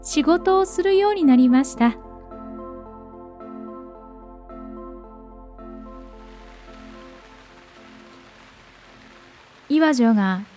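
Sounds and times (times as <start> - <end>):
speech: 0.0 - 2.0, 9.8 - 10.5
sustained musical drone: 0.0 - 9.7
steady rain: 6.0 - 10.5.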